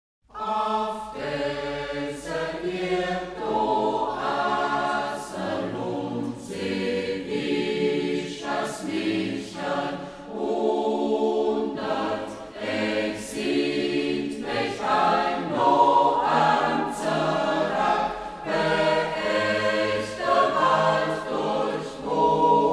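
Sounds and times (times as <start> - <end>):
village choir singing in local dialect: 0.3 - 22.7.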